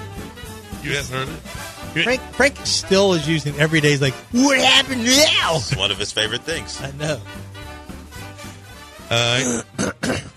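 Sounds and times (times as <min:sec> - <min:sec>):
speech: 0:00.8 - 0:07.4, 0:09.1 - 0:10.3
man clearing his throat: 0:09.2 - 0:10.3.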